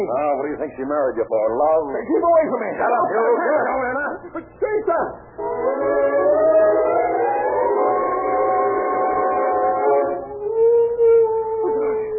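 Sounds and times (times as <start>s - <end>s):
speech: 0.0s - 6.8s
dog howling: 5.4s - 12.1s.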